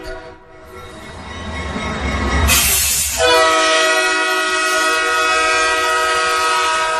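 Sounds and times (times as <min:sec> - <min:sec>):
train rumbling through station: 0:00.0 - 0:06.9
train horn blast: 0:02.5 - 0:06.9.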